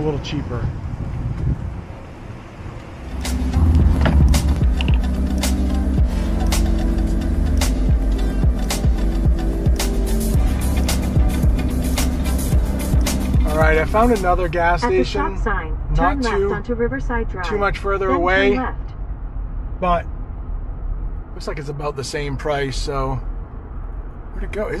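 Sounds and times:
speech: 0.0s - 0.8s, 13.7s - 18.9s, 19.8s - 20.1s, 21.4s - 23.3s, 24.4s - 24.7s
car engine turning over and droning: 0.0s - 24.7s
outdoor wind rumble: 0.0s - 24.7s
sharp clicks and knocks as the car gets moving: 3.8s - 5.1s.

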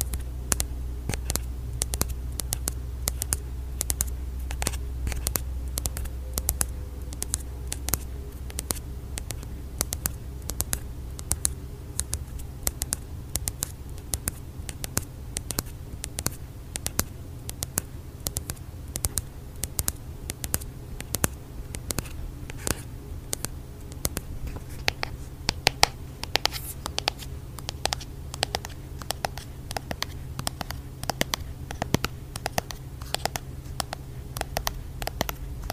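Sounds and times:
light crisp tapping: 0.0s - 35.7s
low steady hum: 0.0s - 35.7s.

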